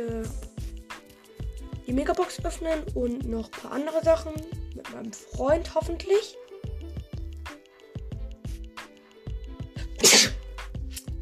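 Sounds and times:
speech: 0:00.0 - 0:00.4, 0:01.9 - 0:06.4
rhythmic low thumps: 0:00.0 - 0:04.8, 0:05.4 - 0:11.2
person sneezing: 0:09.8 - 0:11.1.

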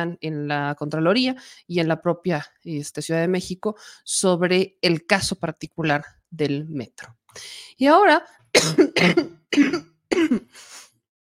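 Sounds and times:
speech: 0:00.0 - 0:10.8
person coughing: 0:08.6 - 0:10.6.

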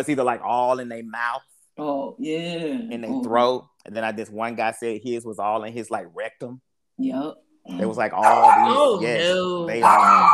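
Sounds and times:
speech: 0:00.0 - 0:10.3
dog barking: 0:08.2 - 0:08.9, 0:09.8 - 0:10.3.

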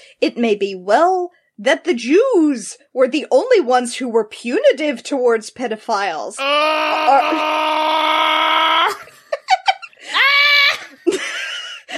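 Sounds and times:
speech: 0:00.2 - 0:07.8
person giving short strained yelps: 0:06.4 - 0:09.1, 0:10.1 - 0:11.0
person screaming in frustration: 0:06.4 - 0:09.1, 0:10.1 - 0:11.0.

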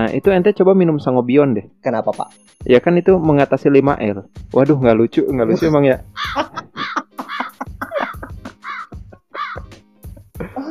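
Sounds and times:
speech: 0:00.0 - 0:06.7
laughter: 0:05.4 - 0:10.7
crow cawing: 0:05.6 - 0:09.7.

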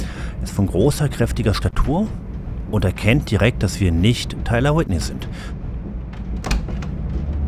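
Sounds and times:
steady low rumble: 0:00.0 - 0:07.4
speech: 0:00.5 - 0:05.6
train compartment sliding door rolling open: 0:06.1 - 0:07.4.

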